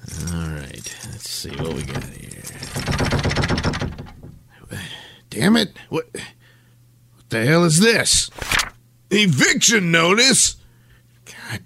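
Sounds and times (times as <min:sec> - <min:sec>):
speech: 0:01.4 - 0:02.2, 0:05.4 - 0:06.4, 0:07.3 - 0:10.6
apartment door being opened from a hallway: 0:01.5 - 0:04.4.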